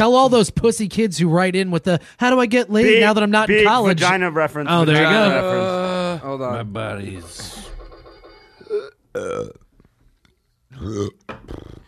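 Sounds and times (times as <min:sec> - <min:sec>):
speech: 0:00.0 - 0:07.7, 0:08.7 - 0:09.6, 0:10.7 - 0:11.8
person burping: 0:08.6 - 0:09.7, 0:10.7 - 0:11.8.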